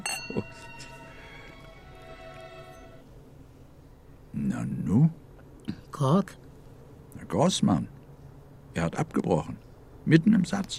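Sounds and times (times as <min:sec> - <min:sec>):
glasses clinking in a toast: 0:00.0 - 0:03.0
speech: 0:06.0 - 0:06.4, 0:07.3 - 0:08.0, 0:08.8 - 0:10.7.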